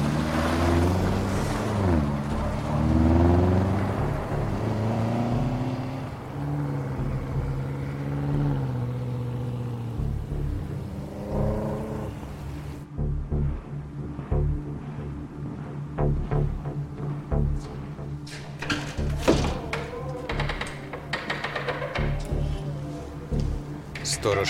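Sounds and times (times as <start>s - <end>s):
car engine pulling away: 0.0s - 24.4s.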